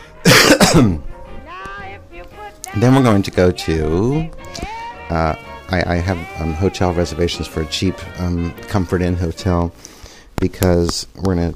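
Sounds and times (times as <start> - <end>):
person clearing throat: 0.2 - 1.0
person coughing: 0.2 - 1.0
speech: 0.7 - 1.1, 2.8 - 11.5.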